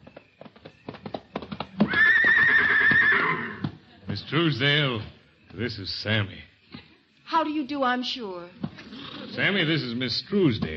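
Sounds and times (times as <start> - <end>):
horse hooves clopping: 0.0 - 6.0, 8.4 - 10.7
horse neighing: 1.8 - 3.7, 8.7 - 9.7
speech: 4.3 - 6.5, 7.3 - 8.6, 9.4 - 10.7.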